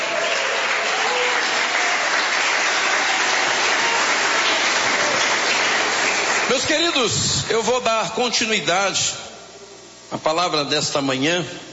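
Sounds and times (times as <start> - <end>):
large church audience applauding: 0.0 - 7.5
speech: 6.7 - 9.2, 10.1 - 11.7.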